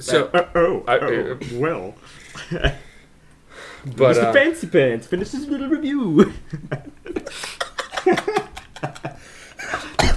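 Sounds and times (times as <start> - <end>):
speech: 0.0 - 2.8, 3.8 - 7.2, 8.0 - 9.8
laughter: 2.1 - 3.0, 6.0 - 10.0
man coughing: 9.6 - 10.1.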